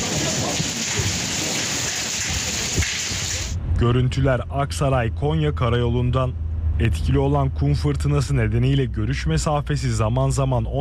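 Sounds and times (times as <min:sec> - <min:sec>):
hazelnut-sized hail pelting vehicles: 0:00.0 - 0:03.6
speech: 0:03.8 - 0:10.7.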